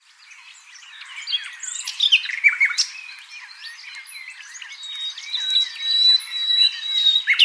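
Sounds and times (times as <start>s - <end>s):
common nightingale Luscinia megarhynchos singing: 0.0s - 7.4s.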